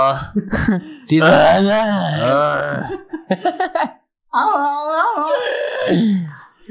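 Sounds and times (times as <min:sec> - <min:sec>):
laughter: 0:00.1 - 0:01.2, 0:02.4 - 0:04.0
speech: 0:00.1 - 0:06.4
man grunting in short bursts: 0:01.1 - 0:03.0, 0:04.4 - 0:06.3
man imitating drawn-out wavering moans: 0:01.1 - 0:03.1, 0:04.4 - 0:06.4.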